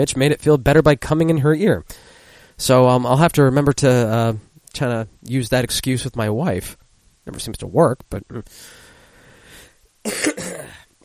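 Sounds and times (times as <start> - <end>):
speech: 0.0 - 8.8, 10.0 - 10.8
wet cough bringing up phlegm: 10.1 - 10.9.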